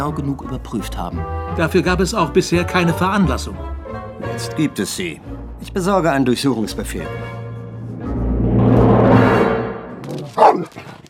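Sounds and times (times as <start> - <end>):
speech: 0.0 - 7.4
broad rush of noise: 7.6 - 10.2
dog barking: 10.4 - 10.7.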